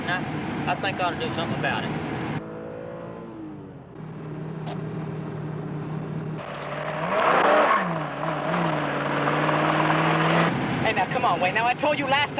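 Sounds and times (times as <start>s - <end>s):
speech: 0.7s - 2.0s, 11.2s - 12.3s
car engine approaching and revving with gear changes: 1.7s - 11.2s.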